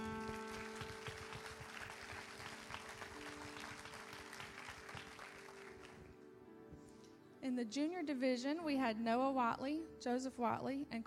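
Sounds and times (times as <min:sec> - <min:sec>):
church crowd clapping: 0:00.0 - 0:06.2
speech: 0:07.4 - 0:11.0.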